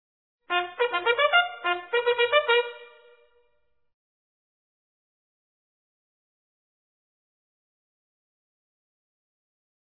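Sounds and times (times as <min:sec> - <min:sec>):
band playing: 0:00.5 - 0:02.8.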